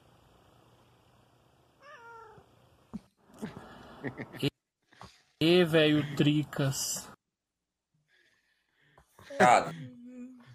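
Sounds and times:
cat meowing: 1.8 - 2.5
speech: 3.4 - 4.5, 5.4 - 7.1, 9.4 - 9.8.

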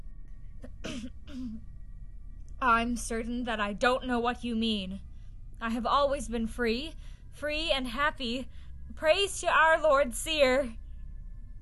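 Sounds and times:
low hum: 0.0 - 11.6
person clearing throat before speaking: 0.6 - 1.6
speech: 2.6 - 10.8.

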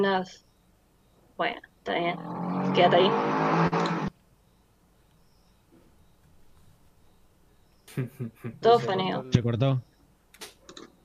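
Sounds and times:
speech: 0.0 - 0.5, 1.4 - 3.8, 8.0 - 9.9
quiet street ambience: 0.0 - 11.0
motorcycle roaring past on the street: 2.0 - 4.1
laughter: 7.9 - 9.0.

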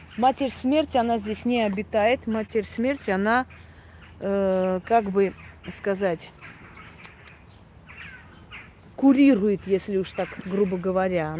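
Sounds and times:
speech: 0.2 - 6.6, 9.0 - 11.3
crow-like bird caws: 3.4 - 8.8.

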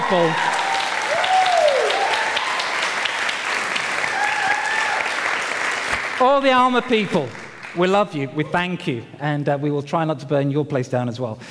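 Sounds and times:
audience clapping: 0.0 - 8.4
speech: 0.1 - 0.6, 6.2 - 11.4.

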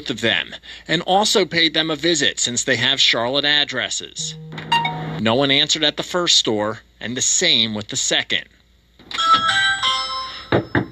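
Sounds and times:
speech: 0.0 - 8.5
electronic doorbell chiming at the front door of a home in Charlotte: 4.2 - 5.2, 9.2 - 10.8
quick firm knocks on a door: 10.6 - 10.8.

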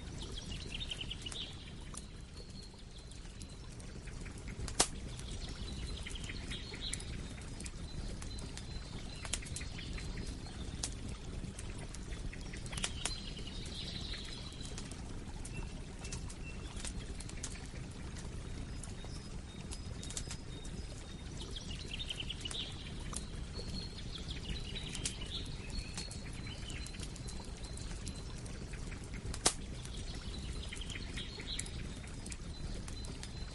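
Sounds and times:
wild forest fire burning in the woods: 0.0 - 33.5.

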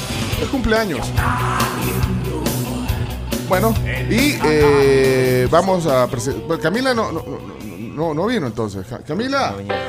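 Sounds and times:
speech: 0.4 - 2.7, 3.5 - 9.8
person yelling a loud wake-up yell: 1.0 - 2.7, 3.8 - 5.5.

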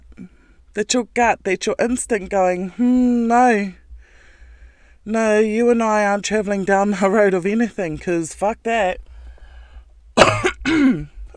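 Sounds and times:
faint hum: 0.0 - 11.3
speech: 0.8 - 3.8, 5.0 - 9.1
person coughing forcefully: 10.2 - 11.3.

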